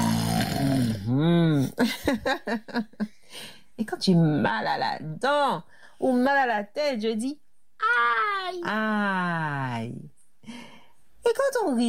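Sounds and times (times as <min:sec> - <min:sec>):
voice imitating a father snoring in his sleep: 0:00.0 - 0:01.6
speech: 0:01.8 - 0:03.0, 0:04.0 - 0:11.8.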